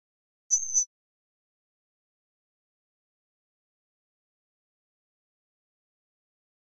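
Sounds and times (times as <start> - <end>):
double electronic flash beep: 0.5 - 0.8.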